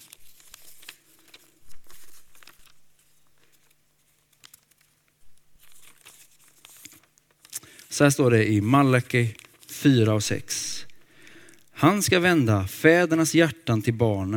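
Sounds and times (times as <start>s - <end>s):
papers shuffled and rustled while looking through notes: 0.0s - 8.1s, 9.1s - 11.1s
faint low electrical hum: 0.0s - 14.3s
speech: 8.0s - 10.7s, 11.8s - 14.3s.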